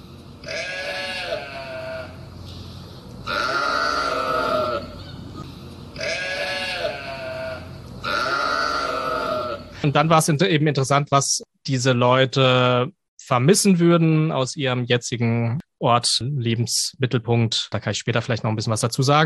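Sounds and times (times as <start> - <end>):
large flock of sheep bleating: 0.4 - 2.2, 3.2 - 9.8
sheep bleats: 0.4 - 9.8
speech: 9.8 - 19.2.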